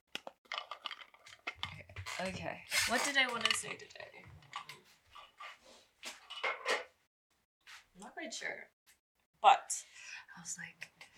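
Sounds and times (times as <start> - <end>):
office chair squeaking and creaking: 1.6 - 3.8
speech: 2.2 - 4.3, 8.2 - 8.8, 9.4 - 11.0.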